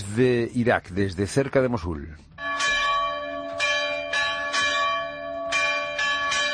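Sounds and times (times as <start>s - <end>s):
speech: 0.2s - 2.5s
church bells ringing in Christian villages: 2.3s - 6.5s.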